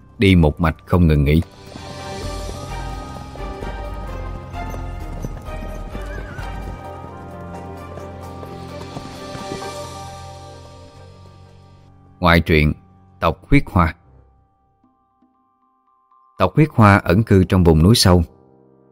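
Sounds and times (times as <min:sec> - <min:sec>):
speech: 0:00.2 - 0:01.6, 0:12.2 - 0:14.0, 0:16.4 - 0:18.3
horses carrying mounted soldiers galloping: 0:01.5 - 0:11.8.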